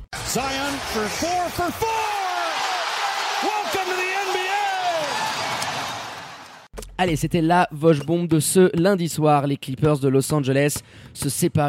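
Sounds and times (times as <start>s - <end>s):
crowd roaring in basketball segment jingle: 0.2s - 6.7s
speech: 0.3s - 2.2s, 7.0s - 11.6s
excited whoops and shouts: 0.4s - 6.3s.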